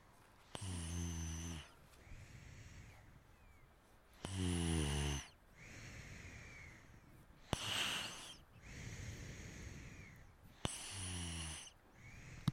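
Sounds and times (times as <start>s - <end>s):
person snoring: 0.5s - 1.8s, 4.2s - 6.9s, 7.5s - 12.5s.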